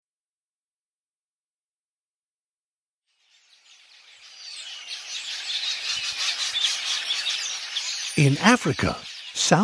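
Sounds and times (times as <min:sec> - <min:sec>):
red-billed quelea chorus of high twittering calls: 0:03.3 - 0:09.6
speech: 0:08.2 - 0:09.6.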